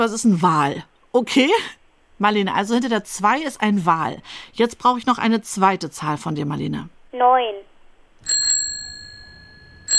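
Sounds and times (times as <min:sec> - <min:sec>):
speech: 0:00.0 - 0:08.4
bicycle bell ringing: 0:08.2 - 0:09.9.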